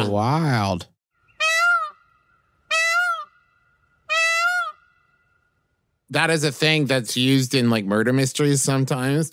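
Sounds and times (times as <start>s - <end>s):
speech: 0.0s - 0.9s, 6.1s - 9.3s
peacock giving shrill wailing calls: 1.1s - 5.7s.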